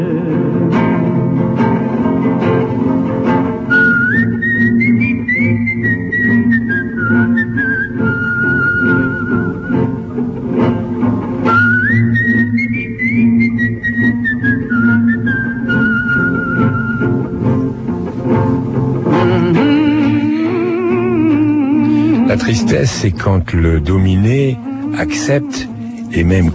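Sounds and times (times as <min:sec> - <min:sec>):
instrumental backing music: 0:00.0 - 0:26.5
whistled melody: 0:03.7 - 0:10.2, 0:11.4 - 0:17.4
speech: 0:22.4 - 0:26.5.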